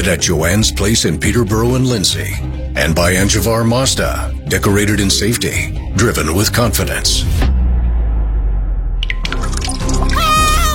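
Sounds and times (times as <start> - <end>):
speech: 0.0 - 7.5
low rumble: 6.8 - 9.6
water dripping, pouring, splashing and gurgling: 9.0 - 10.7.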